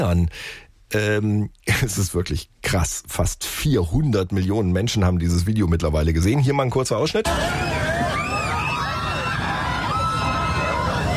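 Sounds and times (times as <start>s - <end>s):
speech: 0.0s - 8.2s
group of people screaming on a raft plunging down a weir: 7.2s - 11.1s.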